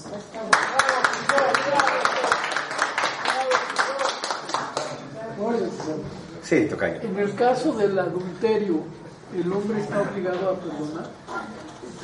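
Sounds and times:
audience applauding: 0.5 - 5.0
speech: 6.5 - 11.2.

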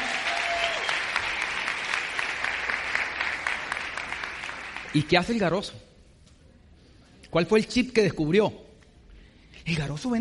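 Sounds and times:
audience applause: 0.0 - 5.2
speech: 4.9 - 5.9, 7.3 - 8.6, 9.6 - 10.2.

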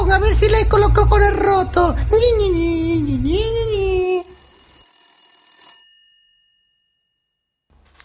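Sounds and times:
speech: 0.1 - 4.2
telephone bell ringing: 4.2 - 7.3.

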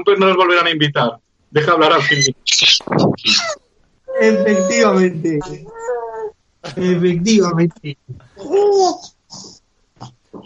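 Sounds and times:
speech: 0.0 - 3.6, 4.2 - 6.0, 6.6 - 10.4
baby babbling and cooing: 2.0 - 6.3, 8.4 - 9.6.

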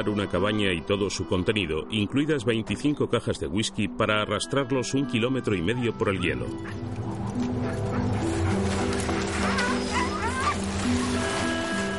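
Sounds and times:
speech: 0.0 - 7.9
sled dogs barking in Antarctica: 5.6 - 11.9
sled dogs whimpering in Antarctica: 6.5 - 11.9
high-pitched sled dog yelps: 7.6 - 11.2.

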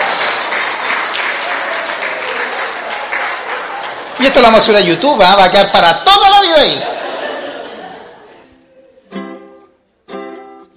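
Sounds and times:
crowd applauding: 0.0 - 5.8
speech: 4.2 - 6.9
laughter: 6.4 - 9.0.

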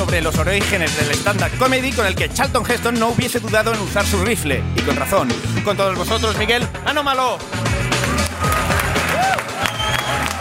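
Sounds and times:
speech: 0.1 - 7.6
crowd clapping: 7.9 - 10.3.

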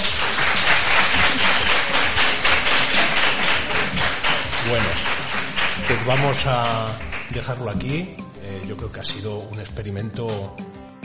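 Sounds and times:
room full of people applauding presenters: 0.0 - 7.6
speech: 6.1 - 10.7.

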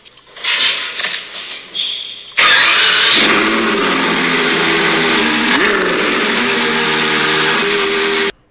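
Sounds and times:
Ferrari 812 Competizione V12 engine starting and revving: 2.4 - 8.4.

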